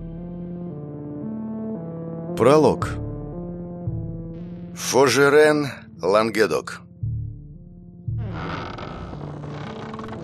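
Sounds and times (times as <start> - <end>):
speech: 2.4 - 3.0, 4.8 - 6.8
wooden barn door creaking open on rusty hinges: 8.1 - 10.2.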